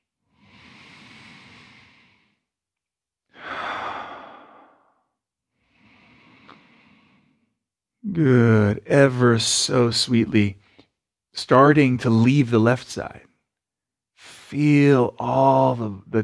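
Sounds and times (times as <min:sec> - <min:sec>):
slow breathing in and out during a guided breathing session: 0:00.0 - 0:07.8
speech: 0:08.1 - 0:10.6, 0:11.4 - 0:13.3, 0:14.5 - 0:16.2.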